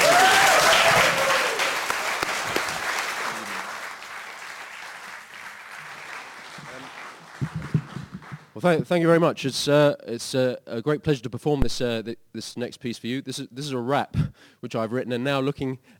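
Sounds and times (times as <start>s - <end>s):
large audience applause: 0.0s - 8.6s
speech: 8.6s - 15.9s.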